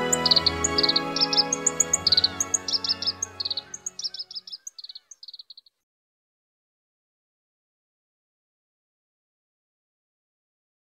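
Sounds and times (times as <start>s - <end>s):
Black-browed reed warbler song on Teuri Island Hokkaido Japan: 0.0s - 5.8s.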